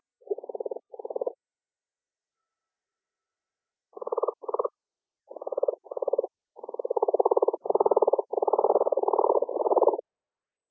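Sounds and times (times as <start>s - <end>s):
Brown's leopard frog Lithobates brownorum pulsed croaking: 0.2s - 1.4s, 4.0s - 4.7s, 5.3s - 10.0s.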